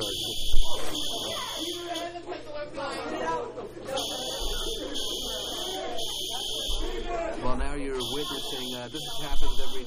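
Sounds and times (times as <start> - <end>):
fire alarm buzzer blaring: 0.0 - 2.2, 3.9 - 7.1, 7.8 - 9.8
several people chattering: 0.0 - 9.8
speech: 8.5 - 9.8.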